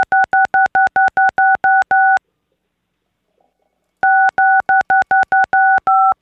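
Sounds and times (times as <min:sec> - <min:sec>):
telephone keypad DTMF tones dialing the digit six: 0:00.0 - 0:02.2, 0:04.0 - 0:06.2.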